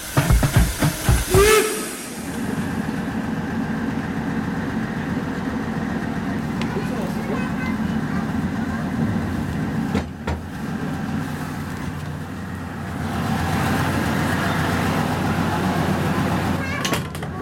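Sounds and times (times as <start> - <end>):
hisses: 0.0 - 3.0
heavy diesel engine of a departing train rumbling: 0.0 - 17.4.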